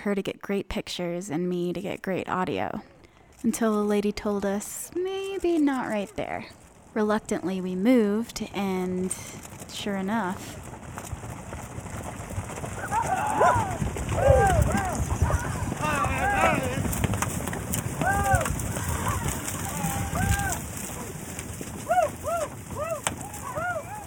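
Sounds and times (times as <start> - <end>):
speech: 0.0 - 10.6
hooves of many herded ranch horses pounding: 1.8 - 24.0
high whooping calls: 12.8 - 16.9, 18.0 - 24.0.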